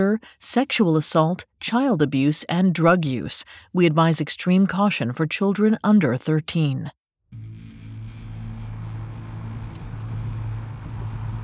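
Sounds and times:
speech: 0:00.0 - 0:07.6
pickup truck engine rumbling on a mountain road: 0:07.4 - 0:11.4
road noise on a mountain road: 0:08.7 - 0:11.4.

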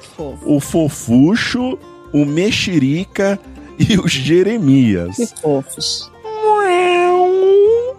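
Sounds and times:
speech: 0:00.2 - 0:06.1
person imitating a cheerful cat meow: 0:06.2 - 0:07.9.

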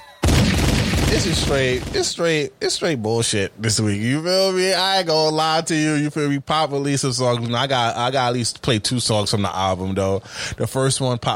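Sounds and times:
gunshot sound effect: 0:00.2 - 0:02.2
speech: 0:01.1 - 0:11.3.

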